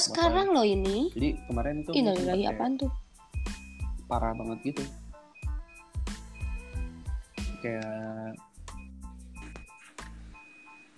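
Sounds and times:
speech: 0.0 - 3.0, 4.1 - 5.0, 7.6 - 8.5
short electronic beeps from an incoming phone call: 3.4 - 7.8, 10.4 - 10.9.

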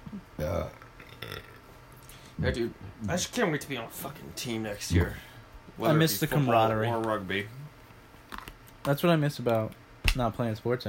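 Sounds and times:
speech: 0.4 - 1.5, 2.4 - 7.6, 8.8 - 10.8
loud low croaking burp: 0.7 - 1.7.

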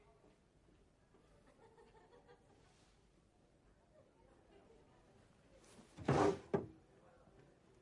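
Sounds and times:
drawer being pulled open: 6.0 - 6.7.

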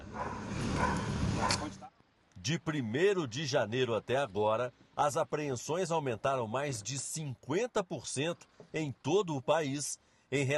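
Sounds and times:
sniffer dog barking: 0.0 - 1.8
steady noise: 0.0 - 10.5
speech: 2.4 - 10.5.

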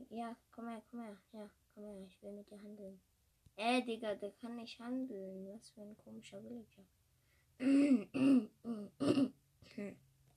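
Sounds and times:
speech: 0.1 - 7.0, 7.6 - 10.1
person coughing and clearing throat: 7.6 - 10.0.

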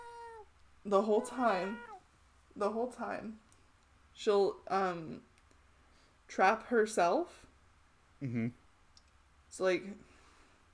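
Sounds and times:
older cat yowling: 0.0 - 2.0
speech: 0.8 - 1.9, 2.6 - 3.4, 4.2 - 5.3, 6.3 - 7.5, 8.2 - 8.6, 9.5 - 10.1.

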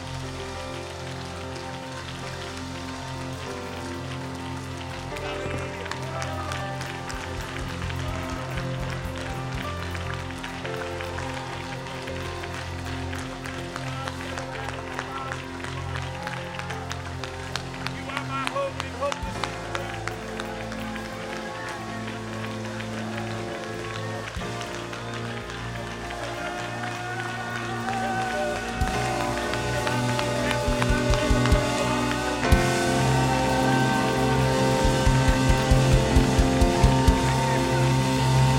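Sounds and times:
large indoor crowd clapping: 0.0 - 38.5
sustained low musical tones: 0.0 - 38.5.

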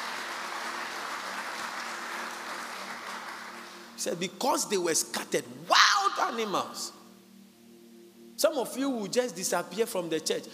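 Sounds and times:
audience applauding: 0.0 - 3.9
speech: 4.0 - 7.0, 8.4 - 10.5.

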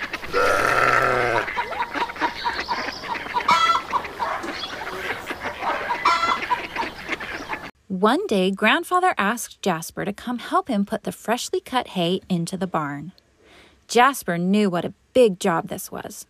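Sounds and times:
farmyard chickens clucking and squawking: 0.0 - 7.7
farmyard goats bleating: 0.2 - 1.5
speech: 0.3 - 0.6, 8.0 - 13.2, 13.9 - 16.2.

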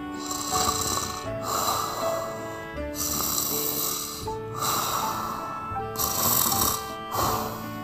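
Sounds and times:
voice imitating a sleeping lamb snoring: 0.2 - 7.7.

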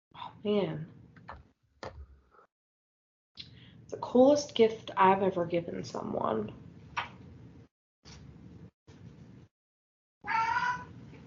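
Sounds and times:
speech: 0.4 - 1.4, 3.9 - 6.6
pet cat meowing: 10.2 - 10.9.

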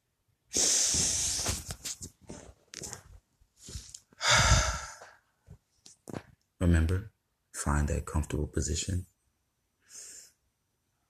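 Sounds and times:
deep breathing during a stress-relief relaxation exercise: 0.5 - 1.6, 3.6 - 5.4
speech: 6.6 - 9.2.

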